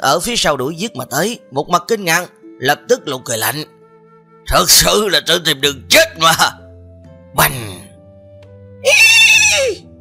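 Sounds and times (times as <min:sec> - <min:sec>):
speech: 0:00.0 - 0:03.8, 0:04.5 - 0:06.6, 0:07.4 - 0:07.6
frightened horse whinnying shrilly: 0:08.8 - 0:09.8.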